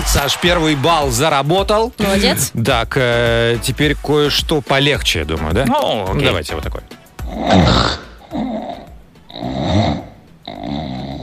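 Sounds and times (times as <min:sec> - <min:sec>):
speech: 0:00.1 - 0:08.5
English bulldog snoring: 0:07.3 - 0:11.2.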